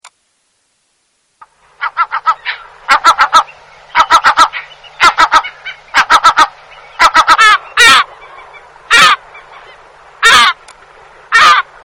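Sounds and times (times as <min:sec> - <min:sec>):
lesser black-backed gull calling: 0:01.8 - 0:10.6, 0:11.3 - 0:11.8.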